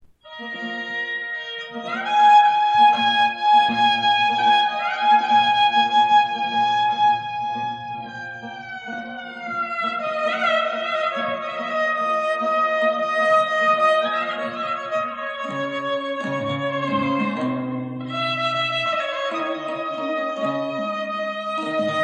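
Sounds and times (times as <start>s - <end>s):
kabak folk instrument playing: 0.2s - 22.0s.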